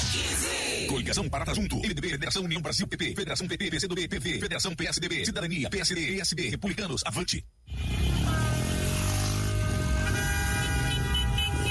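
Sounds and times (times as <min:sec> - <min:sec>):
speech: 0:00.9 - 0:07.6
many car horns blaring at once: 0:07.7 - 0:11.7.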